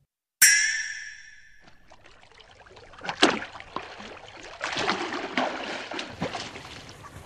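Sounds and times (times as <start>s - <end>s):
person swimming and splashing in water: 1.6s - 7.0s.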